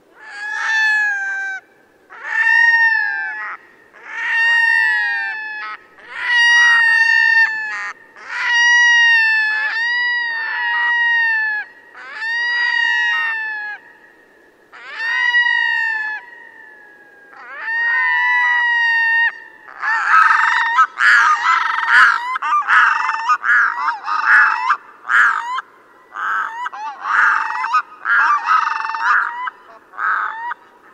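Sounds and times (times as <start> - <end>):
loon calling: 0.2 - 30.9.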